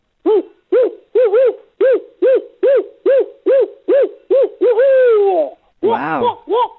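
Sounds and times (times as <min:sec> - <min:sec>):
human voice imitating a barred owl's caterwauling call: 0:01.4 - 0:06.7
speech: 0:06.0 - 0:06.7.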